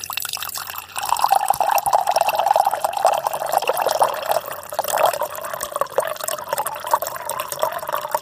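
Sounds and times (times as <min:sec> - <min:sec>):
water splashing and trickling with drips and gurgles: 0:00.0 - 0:08.2.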